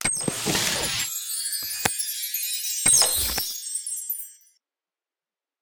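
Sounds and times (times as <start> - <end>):
chest being picked: 0.0 - 2.1, 2.8 - 3.8.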